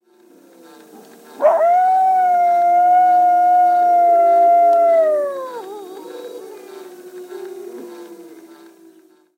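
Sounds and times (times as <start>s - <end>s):
coyote howling: 1.4s - 8.6s.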